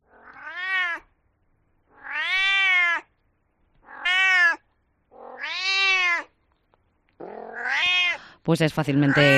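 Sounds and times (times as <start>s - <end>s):
cat meowing loudly: 0.0s - 1.1s, 1.9s - 3.2s, 3.8s - 6.4s, 7.2s - 8.2s, 9.0s - 9.3s
speech: 8.5s - 9.3s.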